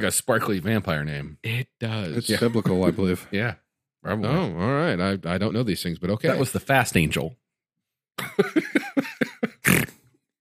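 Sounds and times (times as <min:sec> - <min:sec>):
speech: 0:00.0 - 0:07.4, 0:08.2 - 0:08.8
laughter: 0:02.2 - 0:03.3, 0:08.2 - 0:09.8
person snorting loudly into a microphone: 0:09.6 - 0:10.1.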